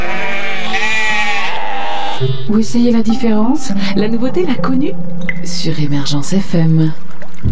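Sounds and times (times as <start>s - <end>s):
herd of sheep bleating: 0.0s - 2.5s
speech: 2.2s - 7.5s.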